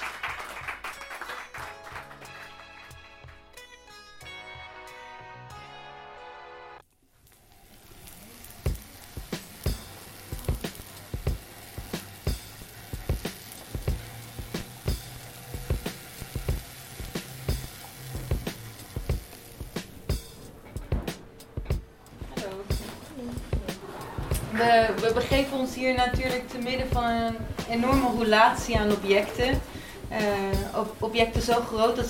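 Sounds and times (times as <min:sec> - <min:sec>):
sharp crackling pops: 0:06.8 - 0:20.4
hamburgers frying in a pan: 0:06.8 - 0:21.3, 0:22.2 - 0:32.0
speech: 0:24.6 - 0:32.0.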